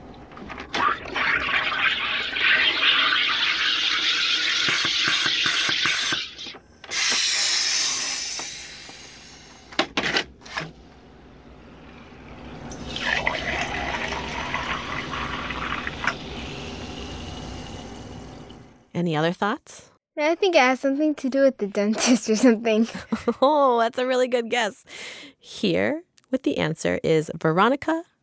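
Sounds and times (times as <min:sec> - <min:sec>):
soda stream machine hissing gas while carbonating water: 0:01.0 - 0:09.8, 0:11.6 - 0:18.7
speech: 0:19.0 - 0:25.0, 0:25.6 - 0:28.1.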